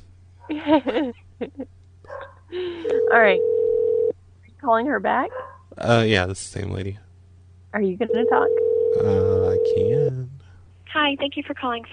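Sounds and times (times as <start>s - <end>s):
steady low electrical hum: 0.0s - 11.9s
laughter: 0.5s - 1.7s
speech: 0.5s - 1.8s, 2.5s - 3.6s, 4.6s - 7.0s, 7.7s - 11.9s
dog barking: 2.1s - 2.4s, 5.3s - 5.8s
dog whining and yelping: 5.3s - 5.6s.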